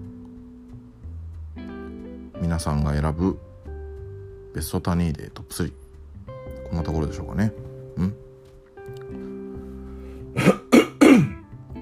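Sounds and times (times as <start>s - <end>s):
speech: 2.5s - 3.5s, 4.5s - 5.8s, 6.7s - 8.2s
person coughing from an itchy throat: 10.4s - 11.4s.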